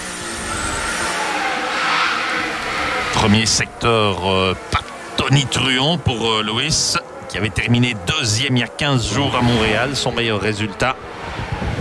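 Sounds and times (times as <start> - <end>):
Formula 1 car braking hard into a chicane: 0.0 - 11.7
speech: 3.2 - 11.2.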